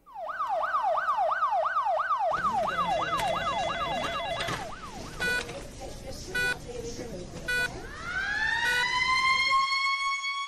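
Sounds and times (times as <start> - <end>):
Military Police car siren wailing in Brazil: 0.0 - 5.5, 7.8 - 10.3.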